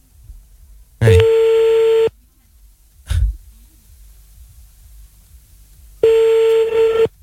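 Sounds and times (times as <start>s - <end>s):
ringing tone of an outgoing telephone call: 1.0s - 2.1s, 6.0s - 7.1s.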